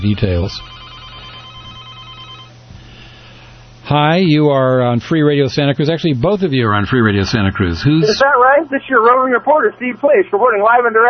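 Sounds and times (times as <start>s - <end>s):
speech: 0.0s - 0.9s, 3.9s - 11.0s
low constant hum: 0.0s - 11.0s
telephones ringing on a call-in line: 0.5s - 2.6s.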